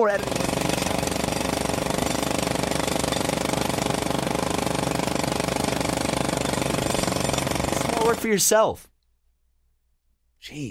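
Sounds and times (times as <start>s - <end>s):
speech: 0.0s - 0.5s, 8.2s - 8.9s, 10.4s - 10.6s
jackhammer pounding: 0.0s - 8.4s.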